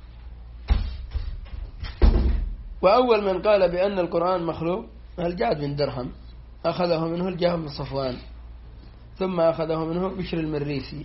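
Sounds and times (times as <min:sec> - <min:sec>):
door pushed shut with dull thuds: 0:00.7 - 0:02.6
speech: 0:02.8 - 0:08.3, 0:09.2 - 0:11.0.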